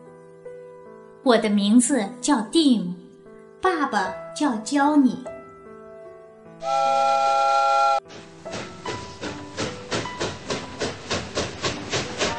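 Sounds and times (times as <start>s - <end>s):
speech: 1.2s - 3.0s, 3.6s - 5.4s, 6.6s - 7.2s
steam train whistle: 6.6s - 8.1s, 12.2s - 12.3s
steam locomotive hissing and chuffing: 6.6s - 12.3s.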